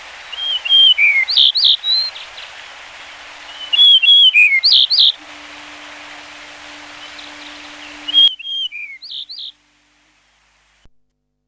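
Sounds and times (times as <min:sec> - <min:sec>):
hissing background: 0:00.0 - 0:10.9
yellow-breasted bunting phrase of clear whistles and slurred notes: 0:03.4 - 0:09.6.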